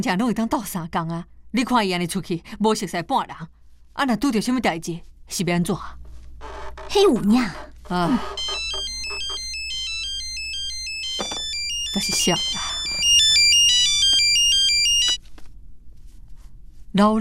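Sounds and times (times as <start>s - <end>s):
speech: 0.0s - 8.5s, 11.9s - 12.7s, 17.0s - 17.1s
melodic electronic telephone ringtone: 8.1s - 15.2s.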